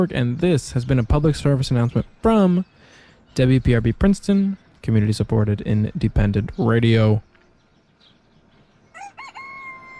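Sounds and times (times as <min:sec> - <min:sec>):
speech: 0:00.0 - 0:02.8, 0:03.4 - 0:07.3
rooster crowing cock-a-doodle-doo: 0:08.9 - 0:09.9.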